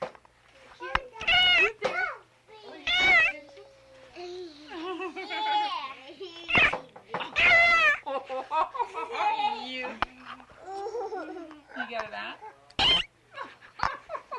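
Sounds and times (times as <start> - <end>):
cat meowing: 1.2 - 1.8, 2.8 - 3.4, 6.5 - 8.0, 12.8 - 13.1
laughter: 4.7 - 5.7, 8.0 - 9.8, 13.3 - 14.3.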